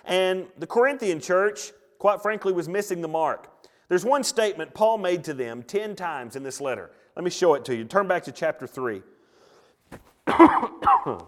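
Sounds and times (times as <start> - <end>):
speech: 0.1 - 9.1, 9.9 - 11.2
speaker coughing away from the microphone: 10.2 - 11.2.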